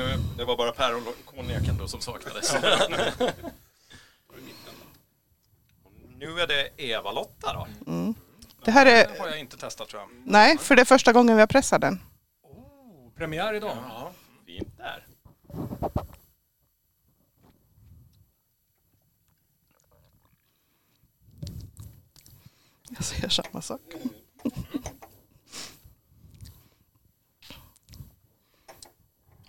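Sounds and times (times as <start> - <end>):
speech: 0.4 - 3.6, 6.2 - 12.1, 13.2 - 15.0, 15.6 - 16.1, 22.9 - 25.0
laughter: 2.1 - 3.6, 23.9 - 25.1
lip smacking while tasting a drink: 18.8 - 20.6, 21.4 - 22.4, 27.4 - 28.1.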